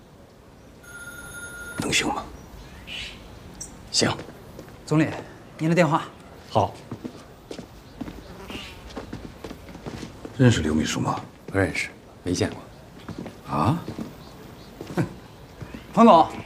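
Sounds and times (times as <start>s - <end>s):
telephone ringing with bright electronic tone: 0.8s - 2.2s
footsteps in a room: 4.0s - 5.4s, 6.4s - 16.4s
shuffling: 6.3s - 16.4s.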